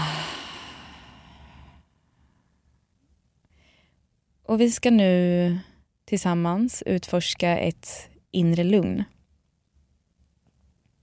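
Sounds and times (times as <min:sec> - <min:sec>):
slow breath in through nose and out through mouth: 0:00.0 - 0:02.7
speech: 0:04.5 - 0:09.2.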